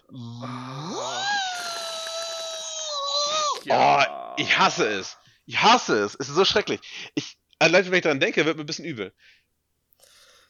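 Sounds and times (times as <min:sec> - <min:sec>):
person vocally imitating a surgical drill going into bone: 0:00.2 - 0:04.4
speech: 0:03.6 - 0:09.4.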